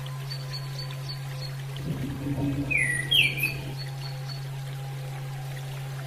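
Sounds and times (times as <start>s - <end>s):
faint watery trickling: 0.0s - 6.0s
constant low hum: 1.6s - 5.6s
female Orange-headed thrush thin downslurred chirps: 1.8s - 4.0s.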